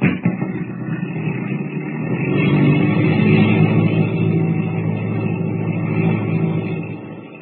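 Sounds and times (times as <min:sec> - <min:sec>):
small engine of a radio-controlled plane droning: 0:00.0 - 0:07.4.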